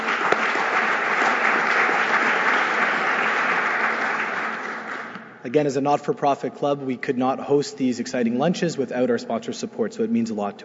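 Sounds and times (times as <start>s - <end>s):
room full of people clapping steadily: 0.0s - 5.2s
speech: 5.4s - 10.6s.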